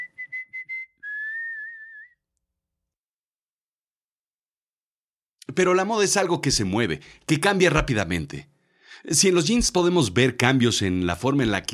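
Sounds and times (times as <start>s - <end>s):
person whistling: 0.0s - 2.3s
speech: 5.6s - 11.7s.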